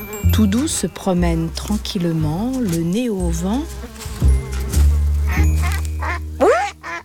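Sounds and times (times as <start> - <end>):
speech: 0.4 - 4.0
ducks quacking at a large pond: 5.3 - 7.0.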